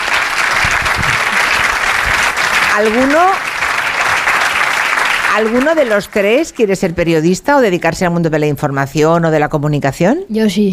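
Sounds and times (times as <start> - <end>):
audience applause: 0.0 - 6.6
speech: 2.8 - 3.5, 5.3 - 10.7.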